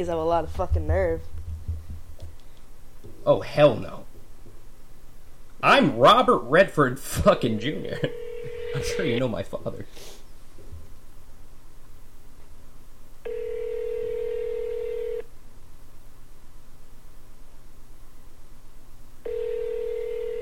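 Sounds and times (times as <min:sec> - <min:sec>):
speech: 0:00.0 - 0:01.4, 0:03.2 - 0:04.1, 0:05.6 - 0:10.2
low hiss: 0:00.0 - 0:20.3
telephone ringing with a steady electronic tone: 0:07.7 - 0:09.2, 0:13.2 - 0:15.2, 0:19.2 - 0:20.3.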